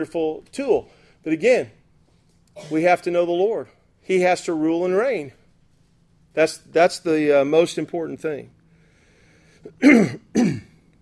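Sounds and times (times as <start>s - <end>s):
speech: 0.0s - 1.8s, 2.6s - 5.4s, 6.4s - 8.6s, 9.6s - 10.6s
throat clearing from someone with a sore throat: 2.5s - 2.9s, 9.7s - 10.9s.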